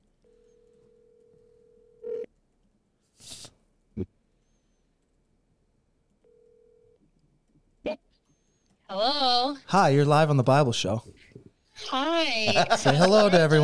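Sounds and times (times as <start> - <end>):
phone ringback tones over a speakerphone: 0.3 - 2.3, 6.3 - 7.0
speech: 9.0 - 11.2, 11.9 - 13.6
laughter: 11.8 - 13.6.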